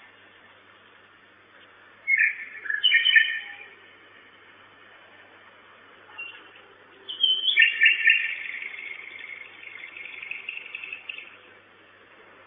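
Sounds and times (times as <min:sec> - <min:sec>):
common nightingale singing at a nest box: 0:02.0 - 0:03.8, 0:06.1 - 0:11.5.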